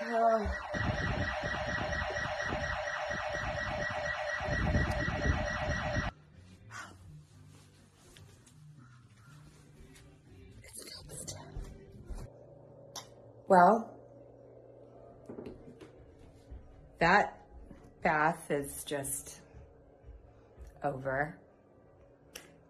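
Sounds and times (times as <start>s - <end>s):
house alarm blaring: 0.0s - 6.1s
speech: 13.5s - 13.9s, 17.0s - 17.4s, 18.0s - 19.4s, 20.8s - 21.4s.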